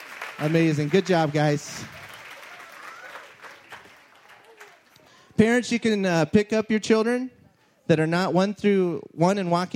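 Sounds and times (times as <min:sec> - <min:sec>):
audience applause: 0:00.0 - 0:05.1
speech: 0:00.4 - 0:02.0, 0:05.4 - 0:09.7.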